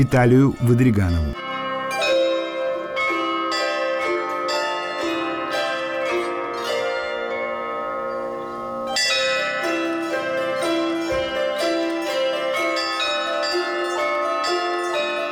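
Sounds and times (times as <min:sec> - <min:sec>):
speech: 0:00.0 - 0:01.4
church bells ringing in a peal: 0:00.0 - 0:15.2
music: 0:00.0 - 0:15.2.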